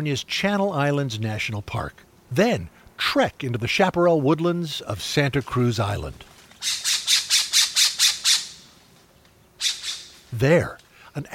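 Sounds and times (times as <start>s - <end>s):
speech: 0.0s - 6.9s, 10.3s - 11.3s
Island Scrub-Jay harsh raspy calls in chaparral woodland on Santa Cruz Island: 6.6s - 8.8s, 9.6s - 10.4s.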